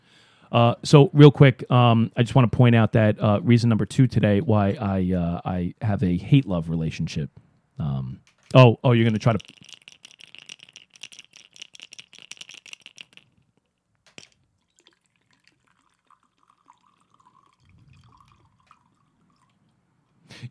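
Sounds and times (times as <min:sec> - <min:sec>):
speech: 0:00.5 - 0:09.8
whiskey pouring slowly from a bottle: 0:09.0 - 0:13.4, 0:14.1 - 0:19.8.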